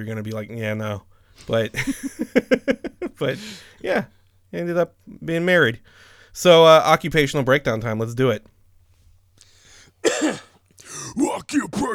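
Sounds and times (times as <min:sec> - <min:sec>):
speech: 0:00.0 - 0:08.5, 0:10.0 - 0:11.9
throaty cough: 0:10.0 - 0:11.9.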